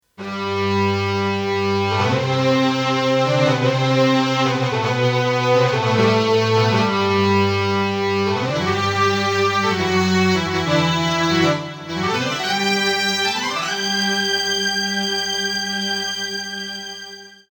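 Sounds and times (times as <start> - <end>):
legato orchestra on a synthesizer: 0.4 - 17.2.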